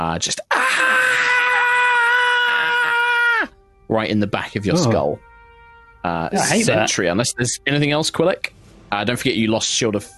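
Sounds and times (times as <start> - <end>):
speech: 0.0 - 1.1, 3.9 - 5.3, 6.0 - 10.1
person voicing a monster scream: 0.5 - 3.5.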